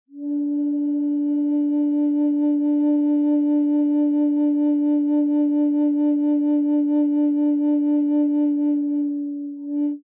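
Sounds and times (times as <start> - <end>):
flutes playing a single bass D note: 0.1 - 10.0.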